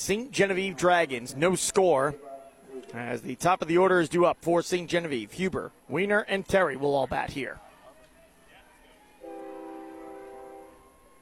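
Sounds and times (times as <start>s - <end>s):
speech: 0.0s - 2.3s, 2.9s - 7.6s
train horn during a ball game: 9.2s - 11.2s.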